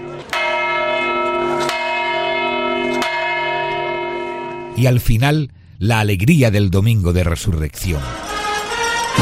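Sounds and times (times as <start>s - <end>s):
tower bell ringing in Granada during Holy Week: 0.0s - 5.2s
speech: 4.8s - 8.2s.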